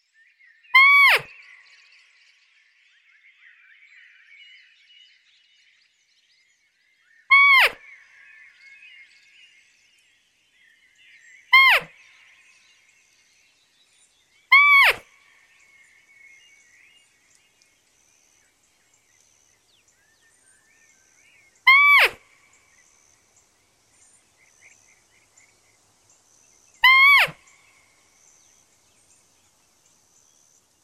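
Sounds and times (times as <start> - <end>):
somewhat drawn-out restrained roe deer lure call: 0.8 - 1.3, 7.3 - 7.8, 11.5 - 12.0, 14.5 - 15.0, 21.6 - 22.2, 26.8 - 27.4.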